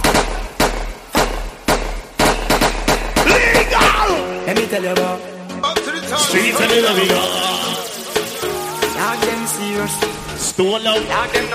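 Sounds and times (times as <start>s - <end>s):
rapid volley of sharp gunshots: 0.0s - 4.2s
speech: 4.5s - 7.5s, 9.0s - 11.5s.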